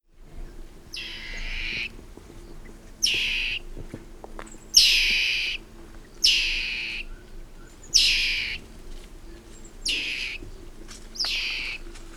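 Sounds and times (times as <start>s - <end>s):
common dwarf mongoose calling: 0.9s - 1.9s, 3.0s - 3.6s, 4.8s - 5.6s, 6.2s - 7.1s, 7.9s - 8.6s, 9.8s - 10.4s, 11.2s - 11.8s.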